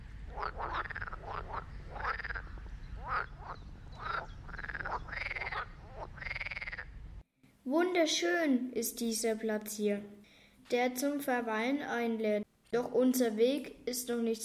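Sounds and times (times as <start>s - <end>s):
frogs croaking at a pond in a village wetland biotope: 0.0s - 7.0s
speech: 8.0s - 14.4s.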